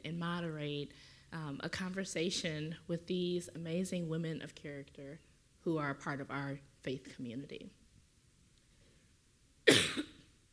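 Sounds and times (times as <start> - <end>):
speech: 0.8 - 7.8
person coughing: 9.7 - 10.3.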